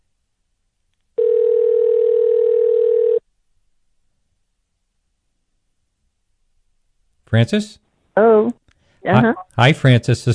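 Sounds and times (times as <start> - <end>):
telephone ring tone: 1.2 - 3.2
speech: 7.3 - 10.3.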